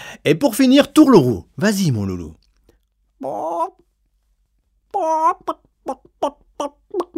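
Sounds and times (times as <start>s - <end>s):
speech: 0.2s - 2.4s, 3.2s - 3.9s, 4.9s - 7.1s
child imitating a hen clucking: 3.2s - 3.8s, 4.9s - 7.1s.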